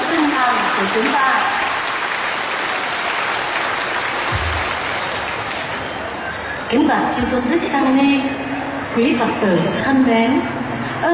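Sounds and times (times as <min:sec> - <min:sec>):
large audience applauding: 0:00.0 - 0:06.7
speech: 0:00.8 - 0:01.6, 0:06.7 - 0:11.1.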